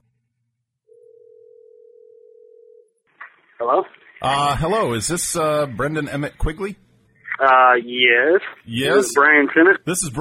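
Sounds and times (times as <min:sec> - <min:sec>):
telephone ringing tone on an outgoing call: 0:00.9 - 0:02.9
speech: 0:03.6 - 0:06.8, 0:07.4 - 0:10.1.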